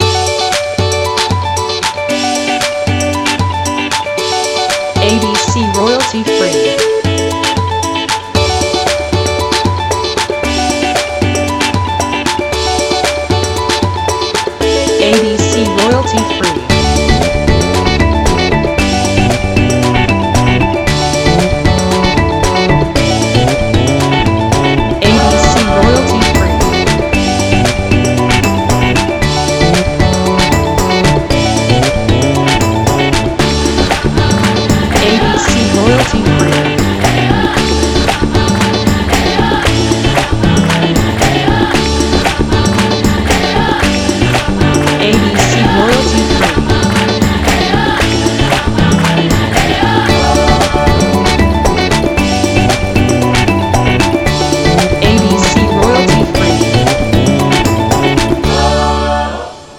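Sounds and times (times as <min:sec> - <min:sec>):
African pop music: 0:00.0 - 0:59.7.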